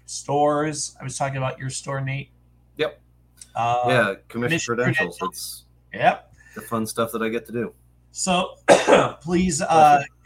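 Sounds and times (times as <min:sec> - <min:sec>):
speech: 0:00.1 - 0:10.2
short throaty cough: 0:08.7 - 0:09.2.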